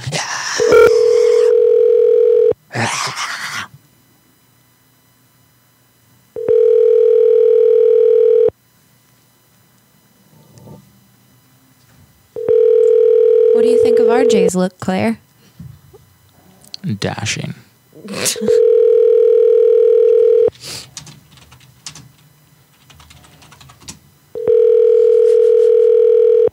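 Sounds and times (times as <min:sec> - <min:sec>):
telephone call to a shop ringing tones: 0:00.6 - 0:02.6, 0:06.4 - 0:08.5, 0:12.4 - 0:14.5, 0:18.5 - 0:20.5, 0:24.4 - 0:26.5
speech: 0:14.3 - 0:15.2, 0:16.8 - 0:17.6, 0:18.2 - 0:18.7.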